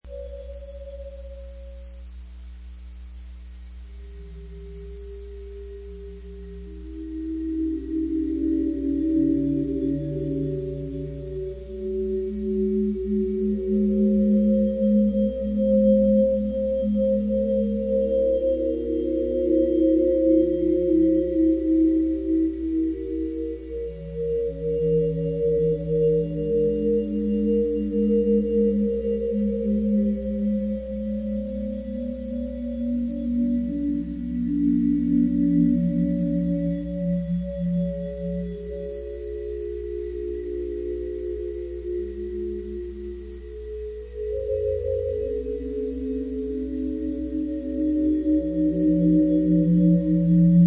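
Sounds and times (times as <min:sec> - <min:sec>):
ambience: 0:00.0 - 0:50.6.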